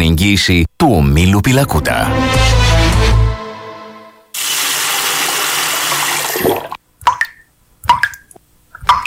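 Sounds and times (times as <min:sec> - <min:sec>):
speech: 0:00.2 - 0:02.7
water running from a tap: 0:04.4 - 0:06.8
water drips plopping from a tap: 0:06.3 - 0:09.0.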